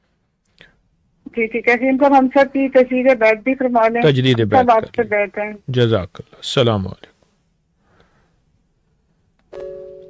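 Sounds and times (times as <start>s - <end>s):
quiet hiss: 0.0s - 10.0s
speech: 1.4s - 7.1s
bell chime with bright overtones: 9.6s - 10.0s.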